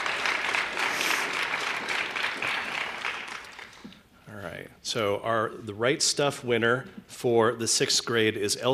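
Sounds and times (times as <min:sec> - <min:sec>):
room full of people applauding: 0:00.0 - 0:03.9
speech: 0:04.9 - 0:08.7.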